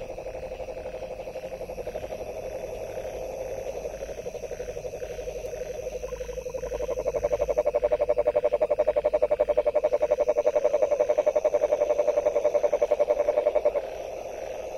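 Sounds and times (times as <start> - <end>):
frog calling in a long fast steady train of pulses: 0.0 - 14.7.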